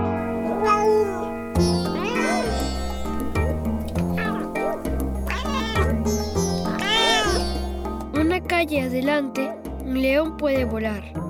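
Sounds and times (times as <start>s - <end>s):
cat meowing: 0.1s - 8.0s
speech: 8.7s - 11.2s.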